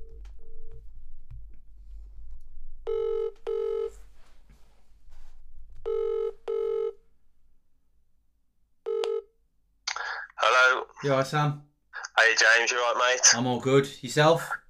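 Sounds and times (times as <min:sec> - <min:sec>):
phone call ringing tone: 0:02.9 - 0:04.0, 0:05.8 - 0:07.0, 0:08.9 - 0:09.3
speech: 0:11.0 - 0:14.6.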